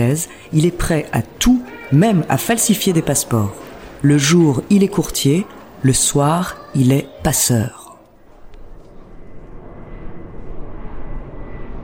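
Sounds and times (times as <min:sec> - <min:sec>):
speech: 0:00.0 - 0:07.8
airplane engine roar of a plane flying from Prague to London: 0:08.3 - 0:11.8.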